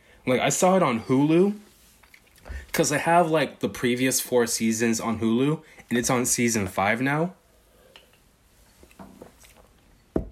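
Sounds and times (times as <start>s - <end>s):
speech: 0.2s - 1.7s, 2.5s - 7.4s
person taking a long quiet sip of water: 1.9s - 2.7s, 8.8s - 9.8s.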